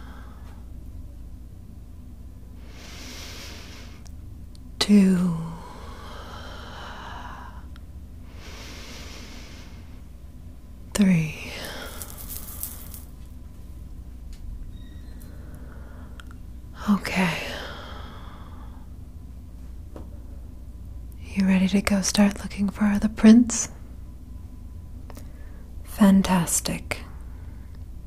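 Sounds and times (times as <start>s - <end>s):
slow calming breaths: 0.0s - 0.8s, 2.5s - 4.2s, 5.0s - 13.1s, 15.1s - 19.1s, 25.1s - 26.0s
speech: 4.9s - 5.5s, 21.7s - 23.8s, 26.0s - 27.1s.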